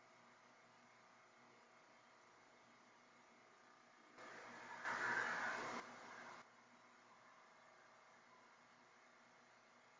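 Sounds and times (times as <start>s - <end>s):
chapel static noise: 0.0s - 9.9s.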